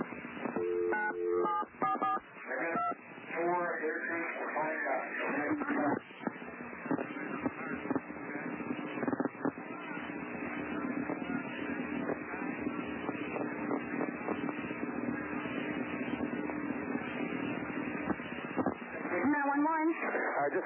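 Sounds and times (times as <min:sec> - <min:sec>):
noisy phone line: 0:00.0 - 0:20.6
telephone keypad tones dialing 911: 0:00.6 - 0:02.2
faint indistinct voices on a phone line: 0:02.3 - 0:20.6.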